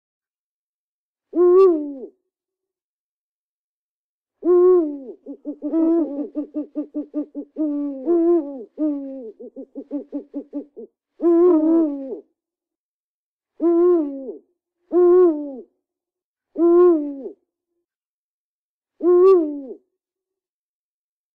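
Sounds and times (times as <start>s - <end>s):
owl hooting: 1.3s - 2.1s, 4.4s - 12.3s, 13.6s - 15.6s, 16.6s - 17.4s, 19.0s - 19.8s.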